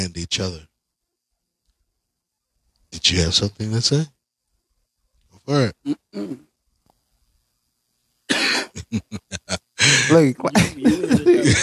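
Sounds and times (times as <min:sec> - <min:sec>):
speech: 0:00.0 - 0:00.7, 0:02.9 - 0:04.2, 0:05.5 - 0:06.5, 0:08.3 - 0:11.6
person coughing harshly: 0:06.2 - 0:06.4, 0:08.3 - 0:09.0, 0:09.8 - 0:11.6
laughter: 0:08.3 - 0:11.6.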